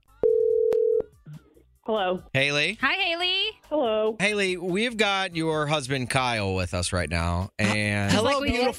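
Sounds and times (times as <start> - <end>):
telephone dial tone: 0.2 - 1.1
speech: 1.9 - 8.7.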